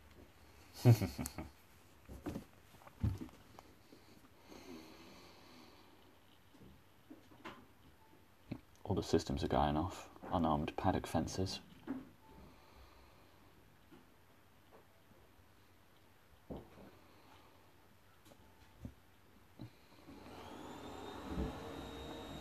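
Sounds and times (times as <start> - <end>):
speech: 0.8 - 1.6, 9.0 - 11.7
vacuum cleaner droning in another room: 19.9 - 22.3.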